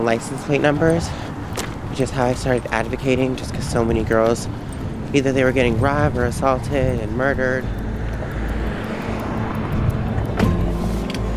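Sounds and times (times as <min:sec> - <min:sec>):
speech: 0:00.0 - 0:01.4, 0:02.0 - 0:07.8
car engine rumbling while rolling slowly: 0:00.0 - 0:11.3.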